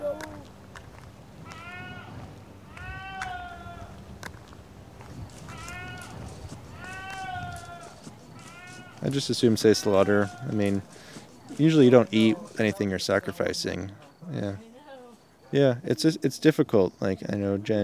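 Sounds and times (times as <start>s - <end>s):
goat bleating: 1.4s - 4.0s, 5.3s - 12.6s
speech: 9.1s - 14.7s, 15.5s - 17.8s.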